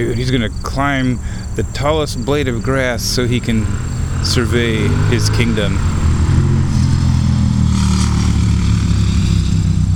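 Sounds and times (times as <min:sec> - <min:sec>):
speech: 0:00.0 - 0:06.0
motorcycles passing by on road: 0:02.0 - 0:09.9.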